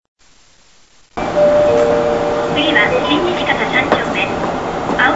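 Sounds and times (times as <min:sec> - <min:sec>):
tape organ on a bus: 0:01.2 - 0:05.0.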